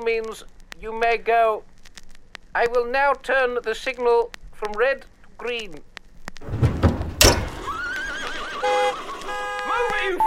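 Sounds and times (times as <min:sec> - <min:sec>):
speech: 0:00.0 - 0:01.7, 0:02.6 - 0:06.6
sharp knock: 0:06.4 - 0:07.8
heavy horse hooves clopping: 0:06.4 - 0:10.1
horse whinnying: 0:07.6 - 0:09.2.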